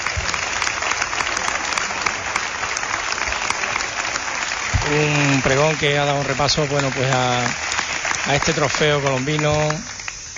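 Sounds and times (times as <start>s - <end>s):
large audience applause: 0.0s - 10.3s
speech: 4.9s - 9.9s.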